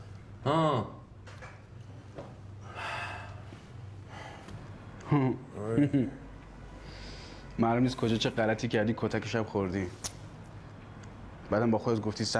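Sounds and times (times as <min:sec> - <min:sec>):
low steady hum: 0:00.0 - 0:12.3
speech: 0:00.4 - 0:01.0, 0:05.1 - 0:06.2, 0:07.6 - 0:10.1, 0:11.5 - 0:12.3
person panting heavily out of breath with voiced gasps: 0:02.6 - 0:04.5.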